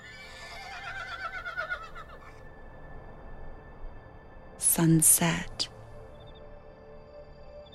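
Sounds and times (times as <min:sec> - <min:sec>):
horse in a corral by a farmhouse and stable whinnying: 0:00.0 - 0:02.3
speech: 0:04.8 - 0:05.7.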